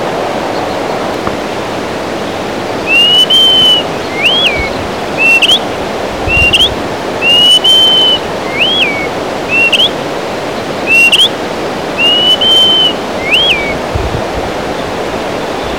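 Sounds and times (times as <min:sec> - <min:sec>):
continuous hiss: 0:00.0 - 0:15.7
greater pewee whistling: 0:02.8 - 0:10.0, 0:10.8 - 0:11.4, 0:12.0 - 0:13.8.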